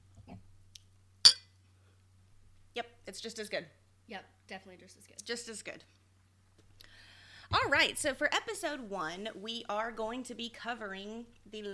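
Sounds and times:
glasses of Chardonnay wine clinking in a toast: 1.3s - 1.5s
speech: 2.8s - 6.0s, 7.5s - 11.7s.

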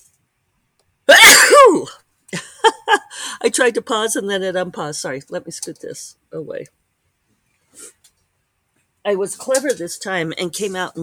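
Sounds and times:
person sneezing: 1.1s - 1.9s
speech: 3.6s - 6.8s, 9.0s - 11.0s.

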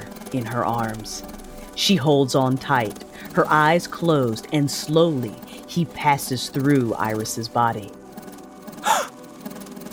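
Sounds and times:
speech: 0.3s - 8.0s
woman gasping: 8.8s - 9.1s.

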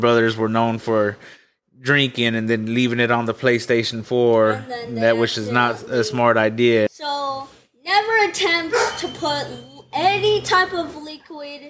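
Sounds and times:
speech: 0.0s - 11.6s
dog barking and yelping: 8.4s - 9.6s.

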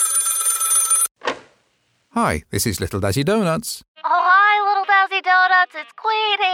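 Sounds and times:
telephone ringing with an electronic trill: 0.0s - 1.1s
speech: 2.2s - 4.1s, 5.3s - 6.5s.

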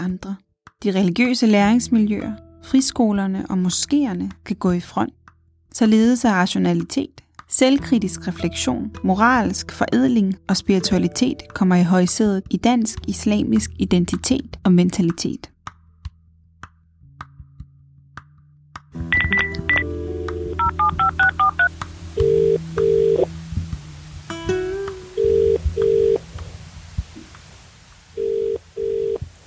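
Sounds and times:
speech: 0.1s - 5.2s, 5.8s - 15.5s
short electronic beeps: 19.1s - 19.8s
telephone keypad tones as a number is dialed: 19.1s - 19.9s, 20.6s - 23.3s, 25.2s - 26.2s
low hum: 19.2s - 27.2s.

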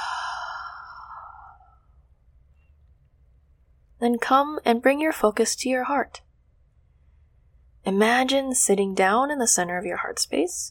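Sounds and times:
person exhaling during a guided breathing meditation: 0.0s - 1.8s
speech: 4.0s - 6.2s, 7.8s - 10.6s.

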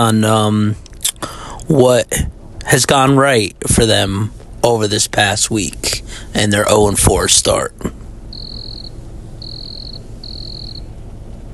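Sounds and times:
speech: 0.0s - 0.8s, 1.7s - 8.0s
faint low hum: 0.0s - 11.5s
crickets chirping: 8.2s - 11.0s.

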